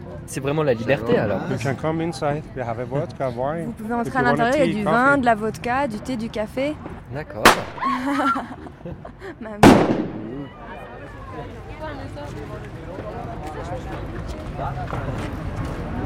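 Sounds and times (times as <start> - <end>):
speech: 0.3 - 10.1, 11.4 - 16.0
firecracker bang: 7.4 - 8.0, 9.6 - 10.4
laughter: 7.8 - 9.6.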